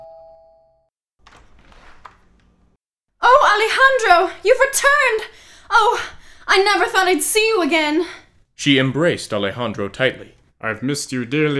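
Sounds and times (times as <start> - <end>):
doorbell chime: 0.0 - 0.9
speech: 3.6 - 11.5.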